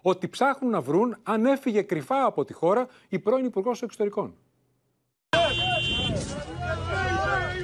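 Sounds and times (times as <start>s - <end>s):
speech: 0.0s - 4.5s
large crowd of protesters shouting slogans in the streets: 5.4s - 7.6s
raised voices: 5.4s - 7.6s.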